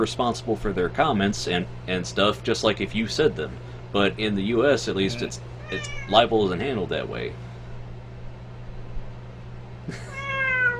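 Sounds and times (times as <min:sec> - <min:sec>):
speech: 0:00.0 - 0:07.5, 0:09.9 - 0:10.1
steady low hum: 0:00.0 - 0:10.7
cat meowing: 0:05.1 - 0:06.2, 0:10.0 - 0:10.7.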